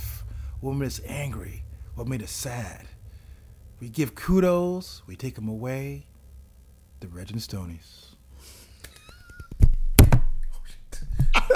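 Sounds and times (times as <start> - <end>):
speech: 0.6 - 3.0, 3.8 - 6.1, 7.0 - 8.1
microphone knocked over with a thud and clatter: 9.5 - 10.4.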